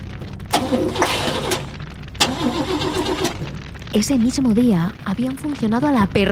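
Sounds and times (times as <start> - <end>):
truck engine cranking and sputtering without starting: 0.4 - 4.3
speech: 0.7 - 1.2, 3.9 - 6.2.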